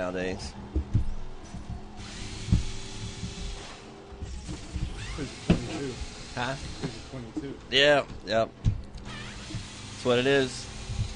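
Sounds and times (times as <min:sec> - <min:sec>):
speech: 0:00.0 - 0:00.7, 0:05.2 - 0:08.6, 0:10.0 - 0:10.7
power tool removing exterior bolts of a gaming system: 0:02.0 - 0:07.4, 0:09.0 - 0:11.1.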